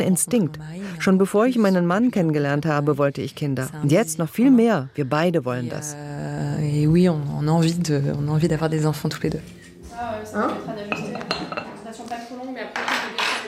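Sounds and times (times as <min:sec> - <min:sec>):
speech: 0:00.0 - 0:11.0
several female employees chatting: 0:00.0 - 0:13.4
dishes and cutlery clinking in a small staff kitchen of a doctor's practice: 0:09.2 - 0:13.4.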